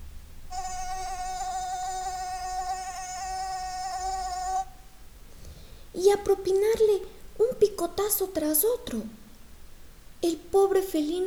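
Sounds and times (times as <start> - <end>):
mosquito whine: 0.5 - 5.0
speech: 6.0 - 9.2, 10.2 - 11.2.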